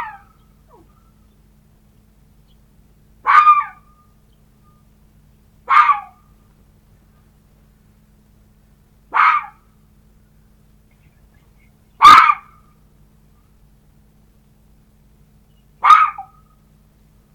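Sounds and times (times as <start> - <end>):
red fox barking yelps: 0.0 - 1.2, 3.2 - 4.1, 5.6 - 6.3, 9.1 - 9.7, 12.0 - 12.6, 15.8 - 16.5.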